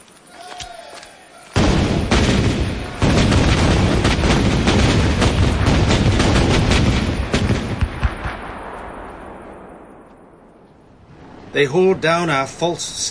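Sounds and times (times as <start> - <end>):
naval cannon broadside firing: 1.6 - 10.7
speech: 11.6 - 13.1.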